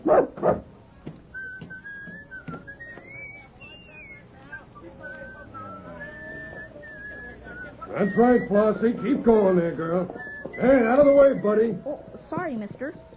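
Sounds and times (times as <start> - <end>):
dog in a wagon barking: 0.0 - 0.7
speech: 8.0 - 13.0.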